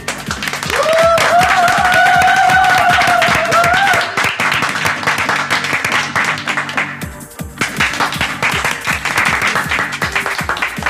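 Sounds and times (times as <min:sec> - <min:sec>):
loud applause from a small group: 0:00.0 - 0:10.8
drawn-out whistle or cheer: 0:00.7 - 0:04.2.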